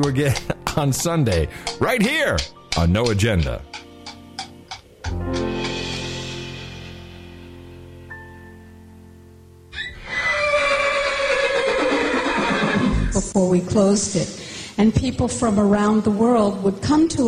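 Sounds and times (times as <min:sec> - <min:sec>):
speech: 0:00.0 - 0:03.8, 0:13.4 - 0:17.2
horse neighing: 0:09.7 - 0:13.2.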